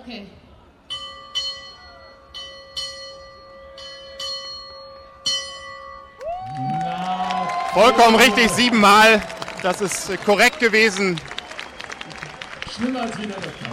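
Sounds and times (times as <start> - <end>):
speech: 0.0 - 0.4, 7.8 - 11.3, 12.8 - 13.7
bell being struck: 0.9 - 6.2.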